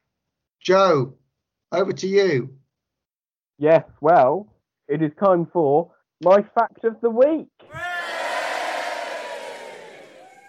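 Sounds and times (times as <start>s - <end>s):
speech: 0.7s - 2.6s, 3.6s - 7.8s
small group cheering and whooping: 7.7s - 10.4s.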